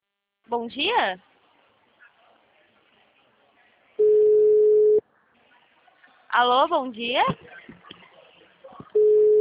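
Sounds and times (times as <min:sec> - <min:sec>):
speech: 0:00.5 - 0:01.3, 0:06.3 - 0:07.5
telephone ringing tone while a call is placed: 0:04.0 - 0:05.0, 0:09.0 - 0:09.3.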